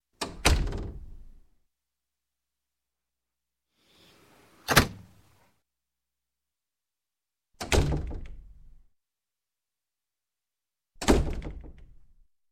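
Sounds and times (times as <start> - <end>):
wooden door closing lightly: 0.2 - 1.1, 4.7 - 5.1, 7.6 - 8.6, 11.0 - 12.0.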